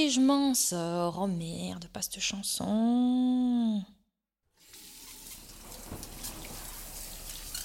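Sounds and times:
speech: 0.2s - 4.0s
faint splashing: 4.6s - 7.6s
shower water running: 4.6s - 7.6s.

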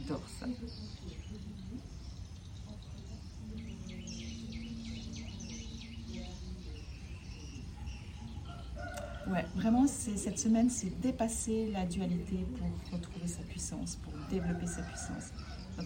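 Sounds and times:
outdoor birdsong with chirps and trills: 0.0s - 15.8s
steady hum: 0.0s - 15.8s
speech: 0.1s - 1.9s, 9.3s - 15.8s
rooster crowing: 8.2s - 10.0s, 14.0s - 15.8s.

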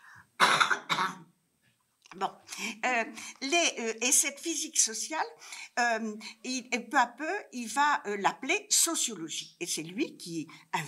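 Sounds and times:
faint breath: 0.0s - 0.3s, 5.4s - 6.4s
person coughing harshly with throat clearing: 0.4s - 1.3s
speech: 2.2s - 10.8s.

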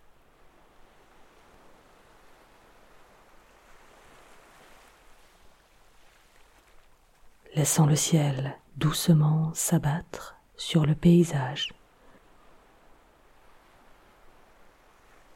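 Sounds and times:
faint steady wind: 0.0s - 15.3s
speech: 7.6s - 11.8s.

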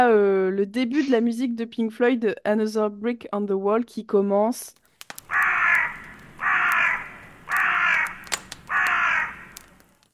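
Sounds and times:
speech: 0.0s - 5.4s
faint clicks: 4.8s - 10.1s
raven cawing with harsh drawn-out croaks: 5.2s - 9.8s.

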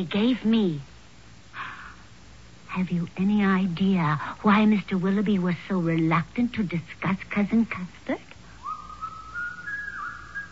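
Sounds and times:
speech: 0.0s - 0.9s, 2.8s - 8.3s
person whistling a tune: 8.6s - 10.5s.

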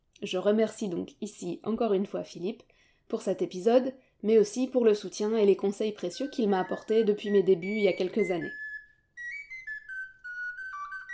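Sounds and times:
speech: 0.2s - 8.6s
short bright melody on a flageolet: 6.0s - 11.1s.

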